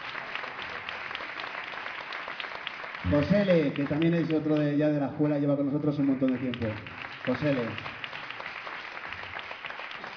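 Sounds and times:
audience applause for a musician at a band concert: 0.0 - 10.1
speech: 3.0 - 7.9.

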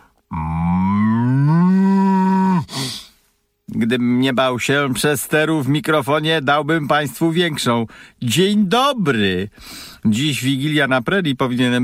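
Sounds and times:
human voice imitating a cow mooing: 0.3 - 2.8
short breathy burst: 2.7 - 3.5, 9.6 - 10.0
speech: 3.8 - 11.8.

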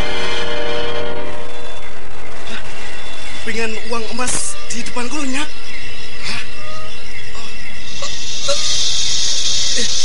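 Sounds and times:
busy noisy background: 0.0 - 10.0
many yellow venomous snakes hissing: 2.4 - 10.0
speech: 3.6 - 5.6.

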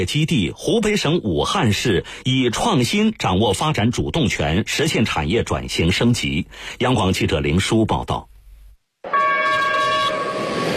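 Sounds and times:
speech: 0.0 - 8.3
horn of a loaded container freight train departing a freight station in Wuhan: 9.1 - 10.7
rumble of a rolling loaded container freight train: 9.8 - 10.7.

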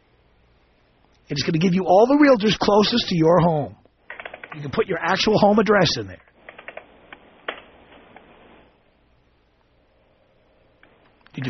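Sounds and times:
faint steady hiss: 0.0 - 11.4
speech: 1.3 - 3.8, 4.5 - 6.3
keystrokes on a computer keyboard: 6.5 - 6.8.

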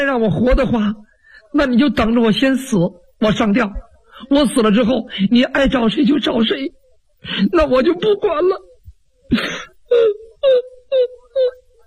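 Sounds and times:
speech: 0.0 - 8.7, 9.3 - 11.6
voice imitating a woman crying and wailing in a storytelling performance: 7.2 - 11.8.

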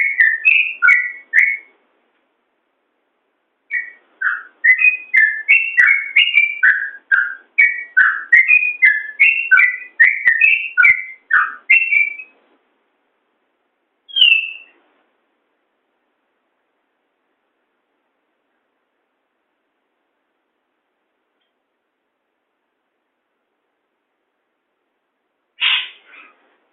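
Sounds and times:
yellow-vented bulbul singing: 0.0 - 1.8, 3.7 - 12.4, 14.1 - 14.8.

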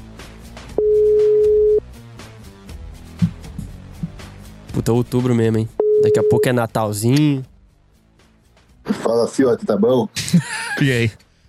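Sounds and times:
voice call ringing tone electronic beep: 0.8 - 1.8, 5.8 - 6.5
speech: 4.8 - 7.5, 9.1 - 11.2.

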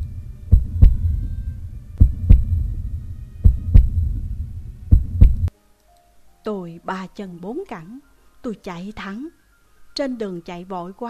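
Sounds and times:
heartbeat pounding: 0.0 - 5.5
low hum: 0.0 - 5.5
speech: 6.5 - 9.4, 10.0 - 11.0.

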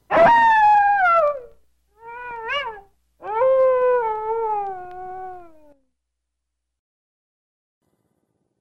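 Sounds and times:
forest wolf howling: 0.1 - 5.8.

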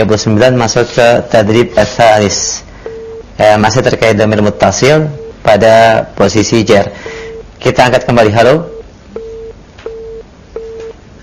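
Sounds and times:
speech: 0.0 - 2.6, 3.4 - 8.8
telephone line disconnected tone on a radio call-in: 2.8 - 3.3, 8.7 - 11.2.

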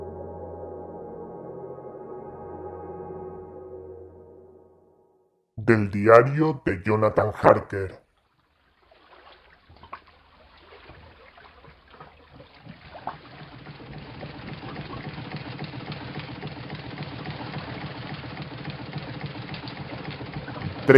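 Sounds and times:
speech: 5.7 - 8.0
steam launch engine and boiler running at night: 13.2 - 20.9.

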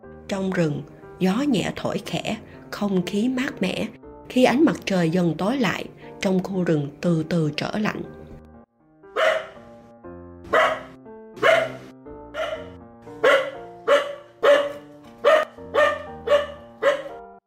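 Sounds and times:
speech: 0.3 - 8.2
yellow-furred mountain dog barking in a forest: 9.1 - 9.7, 10.5 - 17.2.

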